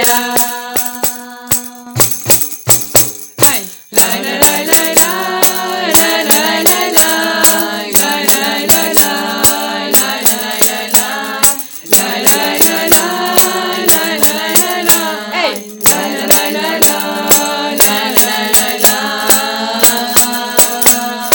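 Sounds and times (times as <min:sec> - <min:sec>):
muineira folk dance music: 0:00.1 - 0:21.3.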